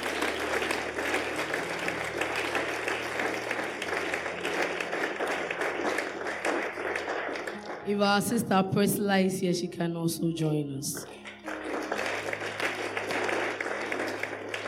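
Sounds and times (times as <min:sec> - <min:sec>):
audience clapping hands in welcome: 0:00.0 - 0:07.9, 0:11.1 - 0:14.6
speech: 0:07.9 - 0:11.2.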